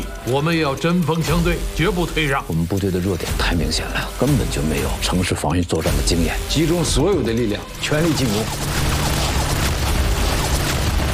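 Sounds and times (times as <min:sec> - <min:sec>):
speech: 0:00.2 - 0:08.9
artillery shells exploding and blowing up bunkers in a battle scene: 0:08.0 - 0:11.1.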